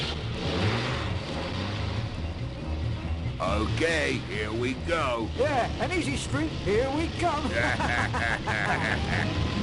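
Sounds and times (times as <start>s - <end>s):
road noise on an old narrow dirt road: 0.0s - 9.6s
truck engine rumbling pulling away on an old narrow dirt road: 0.0s - 9.6s
speech: 3.5s - 9.6s
laughter: 7.4s - 9.4s.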